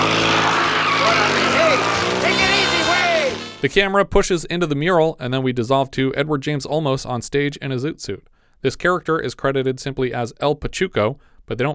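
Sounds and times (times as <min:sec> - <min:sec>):
car tires squealing: 0:00.0 - 0:03.6
fancy car engine roaring: 0:00.0 - 0:03.7
speech: 0:03.6 - 0:11.7.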